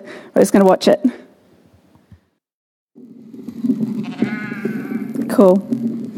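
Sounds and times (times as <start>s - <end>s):
speech: 0.3s - 1.2s, 5.4s - 6.0s
sheep bleating in a noisy chorus: 4.0s - 5.2s.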